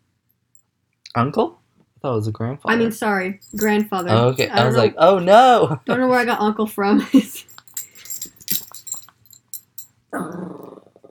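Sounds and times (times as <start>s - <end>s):
speech: 1.2s - 7.5s
playful puppy growling and yapping: 10.2s - 11.1s.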